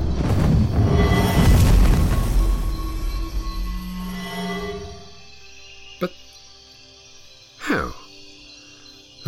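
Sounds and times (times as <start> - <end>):
loud roaring magical blast: 0.0 - 4.1.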